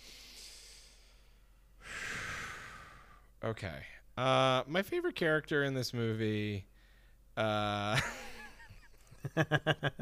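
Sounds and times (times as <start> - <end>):
person taking a quick deep breath: 0.0 - 3.3
quiet hiss: 0.0 - 10.0
speech: 3.4 - 6.7, 7.4 - 8.2, 9.2 - 10.0.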